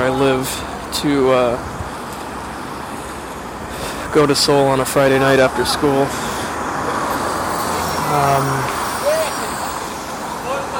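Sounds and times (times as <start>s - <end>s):
steady surrounding city traffic noise: 0.0s - 10.7s
speech: 0.4s - 1.8s, 4.1s - 6.2s, 8.1s - 8.8s
city bus rumbling past on a busy street: 1.6s - 10.7s
bus brake squeal: 6.0s - 10.7s.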